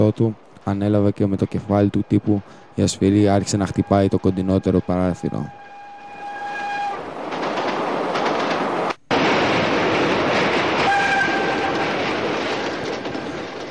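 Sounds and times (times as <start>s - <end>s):
speech: 0.0s - 5.6s
train pulling into a station rumbling on the rails: 0.0s - 13.6s
sustained horn-like tone: 2.8s - 7.0s, 10.9s - 11.7s.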